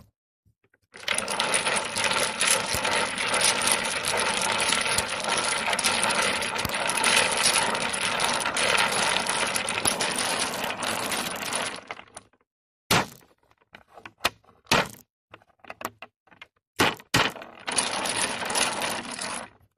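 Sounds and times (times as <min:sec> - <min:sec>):
dominoes: 0:00.9 - 0:12.3, 0:16.8 - 0:19.5.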